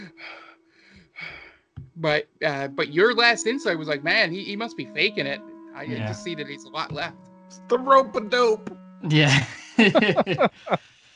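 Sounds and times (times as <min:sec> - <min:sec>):
heavy breathing: 0:00.0 - 0:01.6, 0:10.5 - 0:11.1
speech: 0:02.0 - 0:11.0
laughter: 0:05.9 - 0:06.3, 0:09.1 - 0:10.8.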